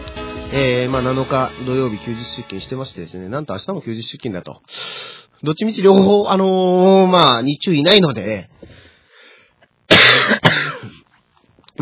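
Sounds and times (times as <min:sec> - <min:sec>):
speech: 0:00.5 - 0:08.5
person with a cold coughing: 0:09.9 - 0:11.1.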